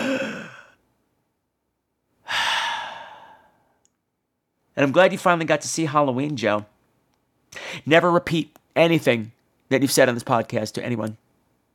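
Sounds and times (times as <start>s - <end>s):
speaker taking audible breaths: 2.2s - 3.8s, 7.5s - 7.9s
speech: 4.8s - 6.7s, 7.8s - 11.2s.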